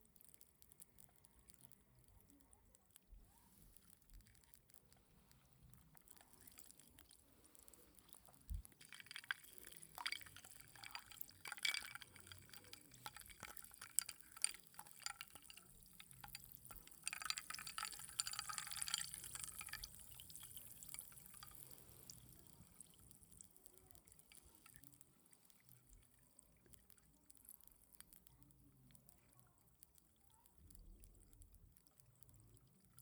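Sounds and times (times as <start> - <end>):
drips and splashes of barley tea: 3.5 - 33.0
barley tea poured into a glass: 5.2 - 28.1.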